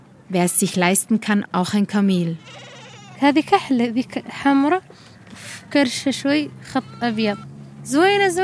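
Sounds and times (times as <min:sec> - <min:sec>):
speech: 0:00.3 - 0:08.4
goats bleating in scrap metal pens at a Sahrawi camp: 0:02.4 - 0:03.3.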